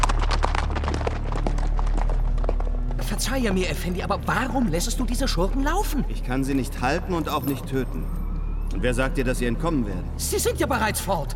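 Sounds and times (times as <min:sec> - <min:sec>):
hoofbeats of several horses ridden away over the bank of a wadi: 0:00.0 - 0:08.5
speech: 0:03.3 - 0:11.3.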